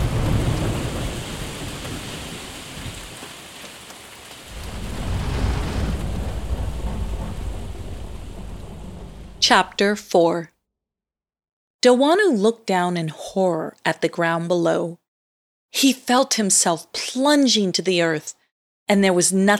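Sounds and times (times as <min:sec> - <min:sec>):
deep rumbling thunder: 0:00.0 - 0:03.6, 0:04.4 - 0:10.1
fierce storm of hail and rain: 0:00.0 - 0:09.9
speech: 0:09.5 - 0:10.5, 0:11.8 - 0:15.0, 0:15.7 - 0:19.5.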